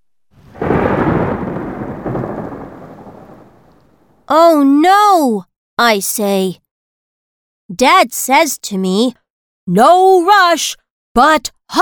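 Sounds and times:
thunder crashing and rolling: 0.4 - 4.2
speech: 4.3 - 6.6, 7.7 - 11.8.

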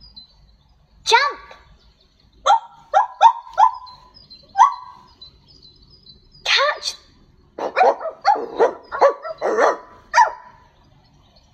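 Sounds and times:
dog barking: 2.4 - 5.1, 7.6 - 10.6.

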